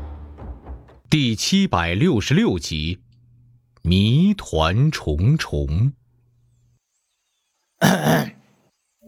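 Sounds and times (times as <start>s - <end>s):
speech: 1.1s - 3.0s, 3.8s - 6.0s, 7.8s - 8.3s
person clearing throat in a short gruff cough: 7.8s - 8.4s.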